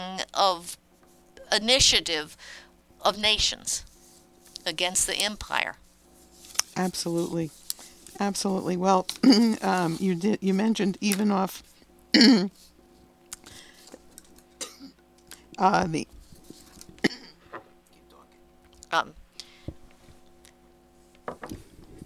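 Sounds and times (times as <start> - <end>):
speech: 0.0 - 0.8, 1.5 - 3.9, 4.6 - 5.8, 6.8 - 7.6, 8.2 - 12.6, 15.6 - 16.1, 18.9 - 19.2
coughing: 9.1 - 9.6, 12.1 - 12.6, 14.6 - 15.1, 17.0 - 17.5
throat clearing: 12.2 - 12.5, 14.6 - 15.0, 17.0 - 17.4.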